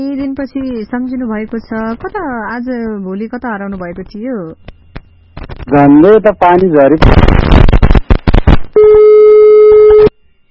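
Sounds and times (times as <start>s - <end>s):
speech: 0.0s - 4.8s, 5.7s - 7.4s
choppy bursts of sound: 4.8s - 8.7s
telephone busy tone after a call disconnects: 8.8s - 10.1s.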